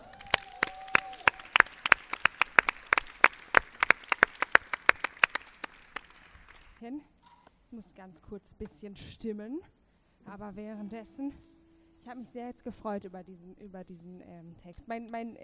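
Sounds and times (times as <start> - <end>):
small audience applauding a musician: 0.0 - 6.8
speech: 6.8 - 15.4.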